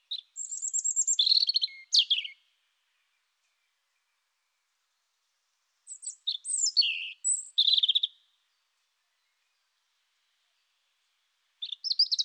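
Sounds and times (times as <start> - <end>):
European robin singing: 0.0 - 3.8, 5.9 - 8.2, 11.6 - 12.2.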